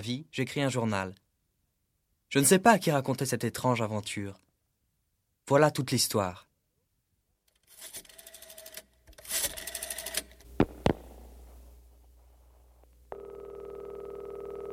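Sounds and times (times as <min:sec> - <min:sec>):
speech: 0:00.0 - 0:01.2, 0:02.3 - 0:04.4, 0:05.5 - 0:06.5
sharp clicks: 0:10.2 - 0:11.2
telephone ringing: 0:13.1 - 0:14.7.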